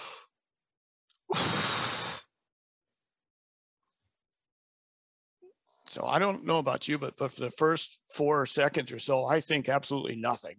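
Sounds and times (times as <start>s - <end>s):
huge breath released in one loud airy rush: 1.3s - 2.3s
speech: 5.9s - 10.5s.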